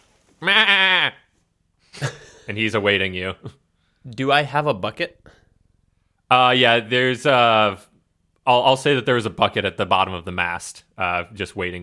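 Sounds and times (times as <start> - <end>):
goat bleating: 0.4 - 1.3
speech: 2.5 - 5.4, 6.3 - 7.9, 8.5 - 11.8.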